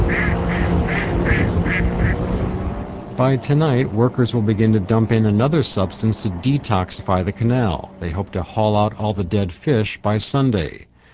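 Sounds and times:
duck quacking as boats head upstream on a canal at nightfall: 0.0s - 2.2s
constant low rumble: 0.0s - 11.1s
speech: 3.2s - 10.9s.

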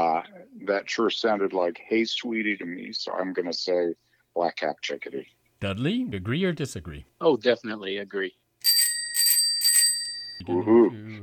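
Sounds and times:
speech: 0.3s - 8.8s, 10.4s - 11.2s
bright bell dinging: 8.6s - 10.4s.

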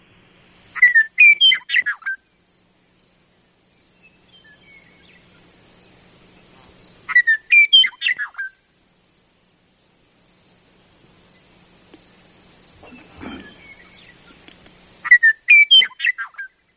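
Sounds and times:
high insect drone: 0.0s - 16.7s
Western Meadowlark singing bubbling flute-like phrases: 0.7s - 2.1s, 3.9s - 5.4s, 12.8s - 16.4s.

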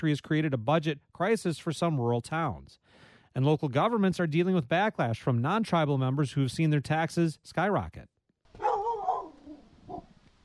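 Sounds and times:
speech: 0.0s - 8.1s
black lab pit bull mix dog barking at the door of a home: 8.6s - 10.1s.

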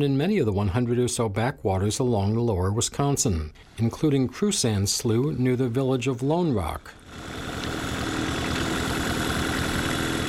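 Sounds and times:
speech: 0.0s - 7.4s
small boat motor running: 7.0s - 10.2s.

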